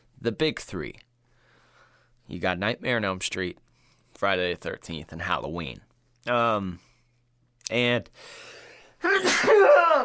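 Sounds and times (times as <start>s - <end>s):
speech: 0.2s - 1.1s, 2.3s - 3.6s, 4.2s - 6.9s, 7.7s - 10.0s
person sneezing: 9.0s - 10.0s.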